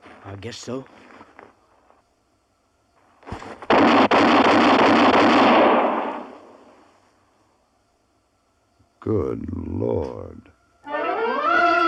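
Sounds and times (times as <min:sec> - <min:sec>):
speech: 0:00.2 - 0:01.1, 0:09.1 - 0:10.5
gunshots fired from a loaded gun: 0:03.6 - 0:06.6.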